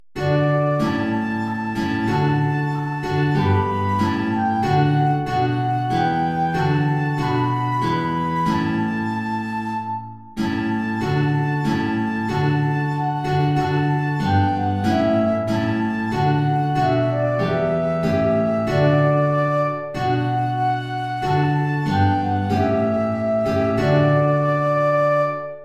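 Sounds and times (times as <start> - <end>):
high guitar: 0.2 - 25.6
high transverse flute: 0.2 - 25.6.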